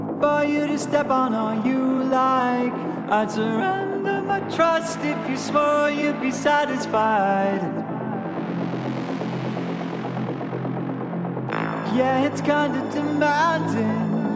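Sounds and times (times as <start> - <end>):
steady instrumental backing: 0.0 - 14.3
sung vocal melody: 0.1 - 8.8, 11.8 - 14.3
speech: 0.2 - 7.8, 11.9 - 14.1.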